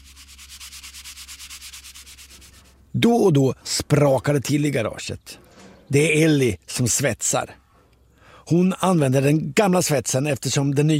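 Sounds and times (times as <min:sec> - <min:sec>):
body filler on a repair being sanded down in a garage: 0:00.0 - 0:02.8
speech: 0:03.0 - 0:07.6, 0:08.5 - 0:10.9.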